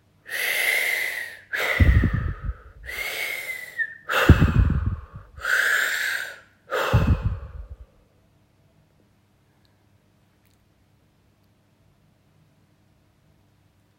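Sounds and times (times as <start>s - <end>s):
deep breathing in and out: 0.3s - 8.0s.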